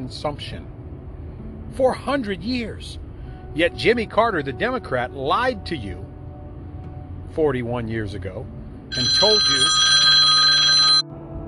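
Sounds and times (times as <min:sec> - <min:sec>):
speech: 0:00.0 - 0:00.8, 0:01.8 - 0:03.0, 0:03.6 - 0:06.1, 0:07.3 - 0:09.9
telephone ringing with electronic trill: 0:08.9 - 0:11.0.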